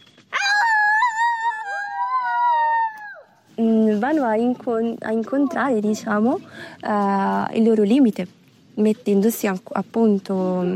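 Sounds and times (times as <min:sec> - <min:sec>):
wolves howling: 0:00.3 - 0:03.3
speech: 0:04.0 - 0:10.7.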